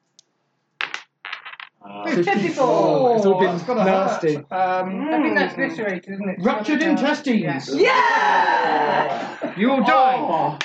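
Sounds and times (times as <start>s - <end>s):
two dice rolled during a tabletop role-playing game: 0.8s - 1.8s
speech: 1.9s - 10.6s
laughter: 8.2s - 10.6s.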